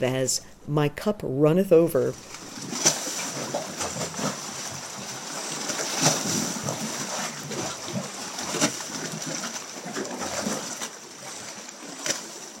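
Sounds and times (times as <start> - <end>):
speech: 0.0 - 2.8
water churning and sloshing in rock crevices: 2.2 - 12.5.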